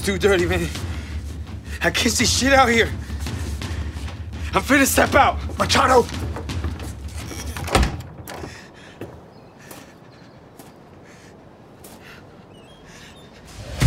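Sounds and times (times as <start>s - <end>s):
speech: 0.0s - 1.0s, 1.8s - 3.1s, 4.5s - 6.5s
shuffling: 0.0s - 13.7s
door opening with a scrape and thump: 5.6s - 9.2s
faint creaks: 6.4s - 9.3s.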